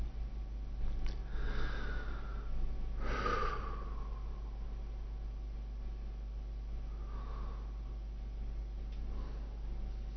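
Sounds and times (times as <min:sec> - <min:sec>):
quiet steady hum: 0:00.0 - 0:10.1
slow deliberate breathing of a person lying on the floor: 0:01.2 - 0:05.2, 0:06.9 - 0:08.1, 0:09.0 - 0:09.8.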